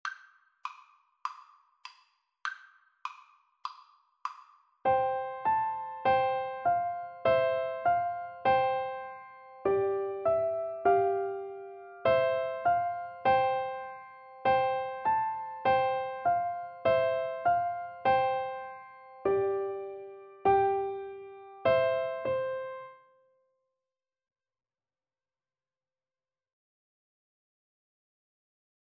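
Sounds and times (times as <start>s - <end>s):
piano duet of a nursery rhyme: 4.9s - 23.0s.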